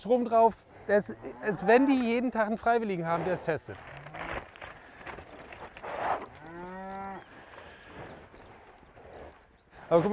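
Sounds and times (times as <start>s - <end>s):
speech: 0.0s - 4.0s, 9.9s - 10.1s
noise: 0.0s - 10.1s
cattle mooing on a farm: 1.0s - 2.3s, 5.9s - 7.4s.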